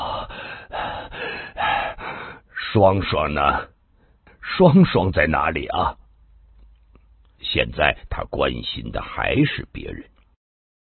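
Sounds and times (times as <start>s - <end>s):
wounded man gasping and panting for breath: 0.0s - 2.6s
speech: 2.8s - 3.8s, 4.4s - 6.0s, 7.5s - 10.1s.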